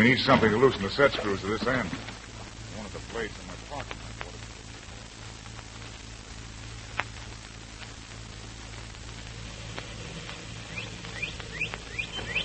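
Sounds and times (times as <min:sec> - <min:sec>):
speech: 0:00.0 - 0:02.1, 0:03.1 - 0:04.0
low hum: 0:00.0 - 0:12.4
steady hiss: 0:00.0 - 0:12.4
birds chirping faintly in the distance at dawn: 0:08.7 - 0:12.4.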